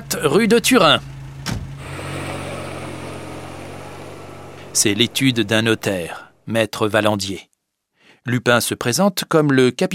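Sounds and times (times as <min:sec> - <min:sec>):
car engine idling: 0:00.0 - 0:06.6
speech: 0:00.2 - 0:01.1, 0:04.8 - 0:07.5, 0:08.2 - 0:09.9.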